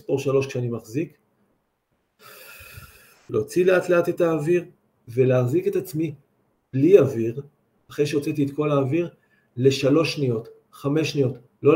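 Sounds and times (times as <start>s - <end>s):
speech: 0.0s - 1.2s, 3.3s - 11.7s
slow deep breath through the mouth in a breathing exercise: 2.2s - 3.3s, 9.2s - 9.6s.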